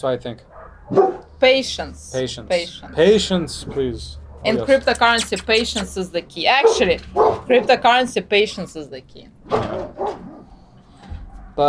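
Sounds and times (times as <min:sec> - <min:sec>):
speech: 0:00.0 - 0:10.0
dog barking: 0:00.6 - 0:01.3, 0:06.6 - 0:07.7, 0:09.5 - 0:10.5.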